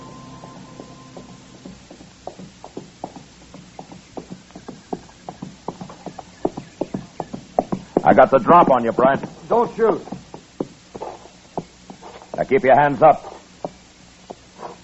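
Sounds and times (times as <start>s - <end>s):
horse hooves clopping along a trail: 0.0s - 14.8s
low hum: 0.0s - 14.8s
speech: 8.1s - 10.2s, 12.5s - 13.3s.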